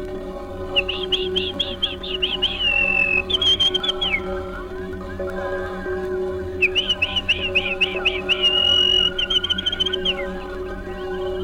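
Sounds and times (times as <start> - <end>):
steady low hum: 0.0 - 11.4
male chaffinch singing: 0.3 - 11.4.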